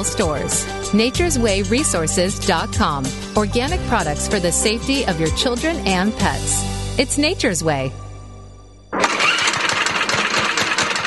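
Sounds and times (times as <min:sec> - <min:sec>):
speech: 0:00.0 - 0:08.0
small lawnmower engine sputtering to life and chugging: 0:08.9 - 0:11.0.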